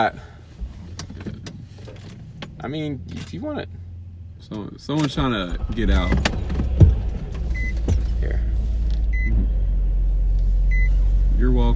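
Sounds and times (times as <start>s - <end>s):
speech: 0.0s - 0.3s, 2.6s - 3.8s, 4.4s - 6.5s, 11.4s - 11.7s
car engine idling: 0.0s - 11.7s
short electronic beeps from inside the vehicle: 9.1s - 9.4s.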